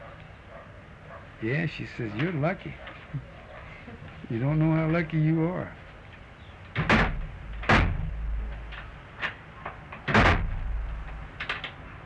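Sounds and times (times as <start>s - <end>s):
speech: 1.4s - 3.3s, 4.3s - 5.8s
faint creaks: 2.0s - 12.0s
door shoved and slammed shut with a rattling thud: 6.7s - 11.8s.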